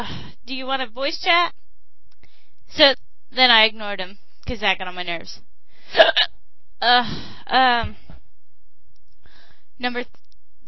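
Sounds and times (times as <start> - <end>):
speech: 0.0 - 1.6, 2.7 - 8.0, 9.8 - 10.6
hiccups: 6.0 - 6.3.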